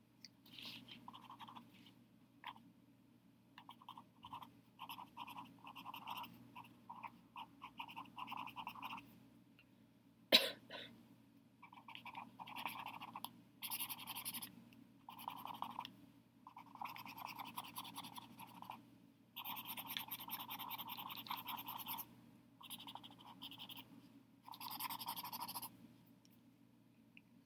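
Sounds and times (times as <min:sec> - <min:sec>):
person writing: 0:00.8 - 0:01.7, 0:03.6 - 0:09.1, 0:11.7 - 0:14.5, 0:15.1 - 0:15.8, 0:16.5 - 0:18.8, 0:19.4 - 0:23.8, 0:24.5 - 0:25.7.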